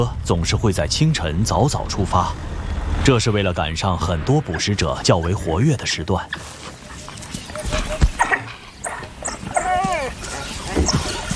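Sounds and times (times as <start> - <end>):
speech: 0.0 - 6.7
rustling outdoor background: 0.0 - 11.3
African wild dog yelping and chirping: 8.2 - 11.3.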